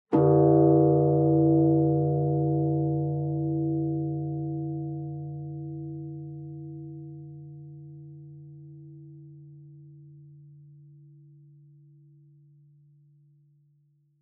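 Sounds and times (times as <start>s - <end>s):
high bonsho temple bell ringing: 0.2s - 6.6s.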